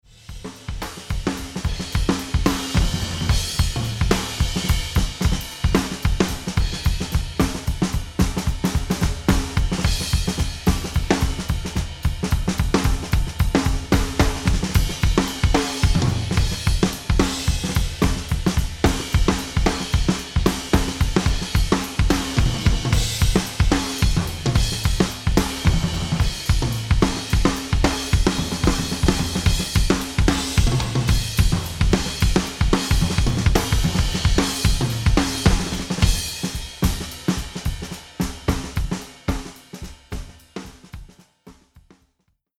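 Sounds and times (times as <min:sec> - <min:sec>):
drum kit overheads: 0:00.0 - 0:42.2.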